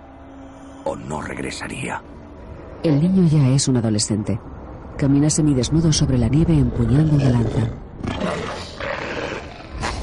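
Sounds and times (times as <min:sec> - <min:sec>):
speech: 0:00.8 - 0:02.2, 0:02.8 - 0:08.4
wolf growling with a deep rough rumbling snarl: 0:06.8 - 0:10.0.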